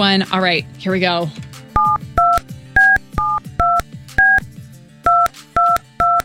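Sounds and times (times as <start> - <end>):
speech: 0.0 - 1.4
telephone dialing touch tones: 1.8 - 4.4, 5.1 - 6.2.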